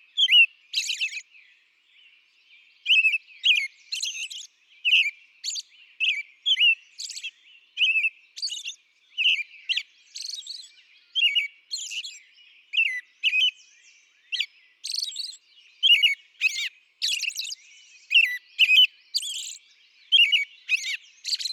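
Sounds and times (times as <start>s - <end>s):
American robin singing: 0.0s - 21.5s.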